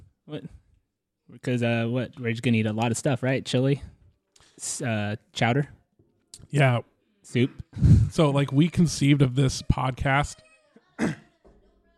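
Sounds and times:
speech: 0.3s - 0.6s, 1.3s - 4.0s, 4.6s - 5.8s, 6.4s - 11.2s
abrupt raspy throat clearing: 11.0s - 11.3s.

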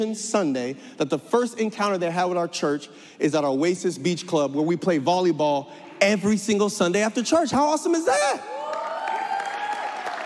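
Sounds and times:
speech: 0.0s - 8.8s
large church audience clapping: 8.6s - 10.2s.

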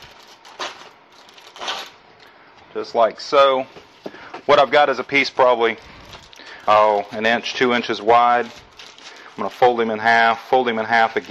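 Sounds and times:
aluminum foil being peeled off a roll: 0.0s - 2.0s, 4.9s - 11.3s
speech: 2.8s - 3.8s, 4.5s - 5.9s, 6.7s - 8.6s, 9.4s - 11.3s.

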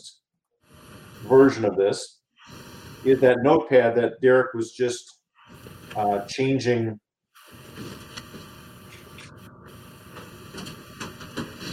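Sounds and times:
speech: 1.3s - 2.2s, 3.0s - 5.1s, 6.0s - 7.0s
printer running: 7.8s - 11.7s.

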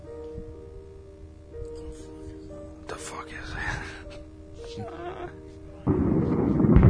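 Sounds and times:
loud thunderclap from a storm rolling into deep rumble: 5.8s - 6.8s.

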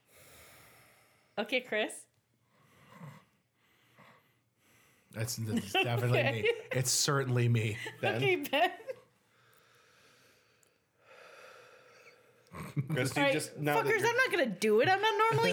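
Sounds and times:
person breathing heavily into microphone: 0.0s - 1.4s, 2.5s - 5.1s, 9.3s - 12.4s
speech: 1.4s - 2.1s, 5.2s - 8.9s, 12.8s - 15.5s
laughter: 5.2s - 9.0s, 12.8s - 15.5s.

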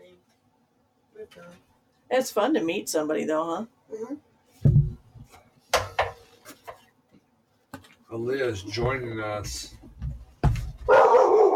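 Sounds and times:
speech: 1.2s - 4.3s, 8.1s - 9.8s
dog barking: 10.9s - 11.5s.

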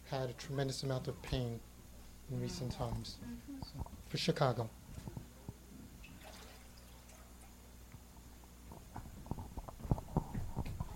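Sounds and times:
low hum: 0.0s - 10.9s
speech: 0.1s - 1.7s, 2.3s - 5.2s
water pouring into a container: 6.1s - 7.5s.

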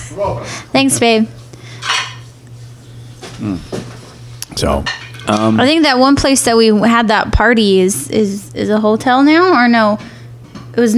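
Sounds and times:
speech: 0.1s - 1.4s, 3.4s - 3.9s, 4.6s - 10.1s, 10.8s - 10.9s
dishes and cutlery clinking and clattering: 1.8s - 2.3s, 4.8s - 5.4s.

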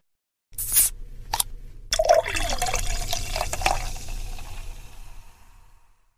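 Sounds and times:
ales and lagers pouring into glasses: 1.9s - 5.3s.

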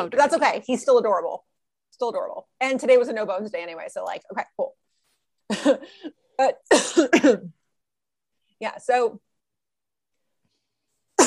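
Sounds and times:
speech: 0.0s - 4.8s, 5.5s - 7.6s, 8.6s - 9.3s
person coughing after inhaling popcorn: 6.7s - 7.5s.

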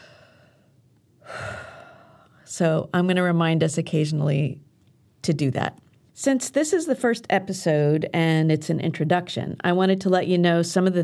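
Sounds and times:
slow deep deliberate breath: 0.0s - 2.5s
speech: 2.5s - 4.7s, 5.3s - 11.0s.

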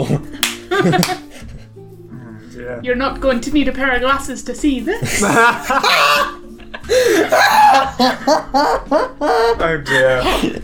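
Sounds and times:
speech: 0.0s - 1.2s, 2.8s - 6.4s, 8.0s - 10.6s
laughter: 0.0s - 1.4s, 5.0s - 10.6s
something slapping against a man's leg while walking downstairs: 0.4s - 1.2s.

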